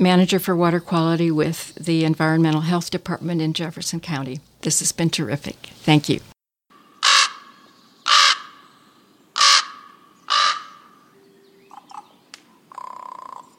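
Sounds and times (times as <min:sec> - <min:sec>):
speech: 0:00.0 - 0:06.3
common raven croaking harshly: 0:07.0 - 0:13.5.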